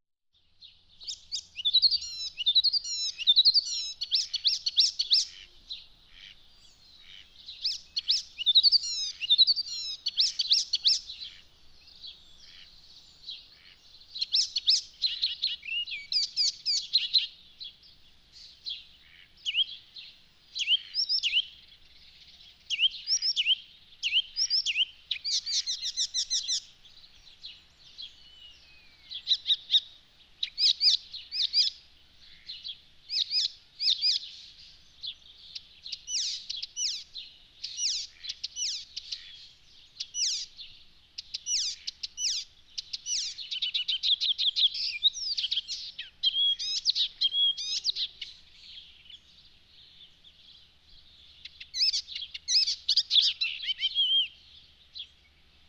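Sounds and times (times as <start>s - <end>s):
icterine warbler bird sounds: 0.4s - 55.6s.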